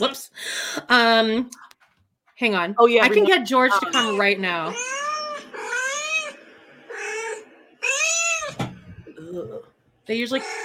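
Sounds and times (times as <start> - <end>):
speech: 0.0 - 1.6, 2.4 - 5.0, 9.4 - 10.6
laughter: 3.0 - 4.2
recorded cats meowing: 3.7 - 9.2, 10.3 - 10.6.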